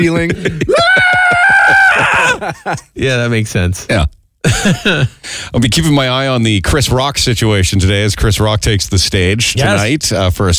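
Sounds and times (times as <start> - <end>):
speech: 0.0 - 1.1, 2.4 - 10.5
voice imitating panicked plane passengers screaming: 0.6 - 2.5.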